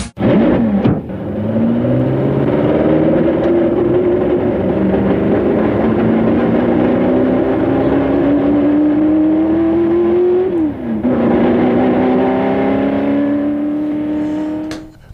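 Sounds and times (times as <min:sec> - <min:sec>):
Ford GT40 engine revving and accelerating: 0:00.2 - 0:15.0.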